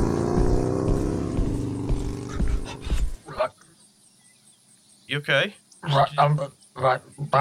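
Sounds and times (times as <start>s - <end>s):
motorbike engine roaring as it drives past: 0.0s - 2.8s
speech: 5.1s - 7.3s.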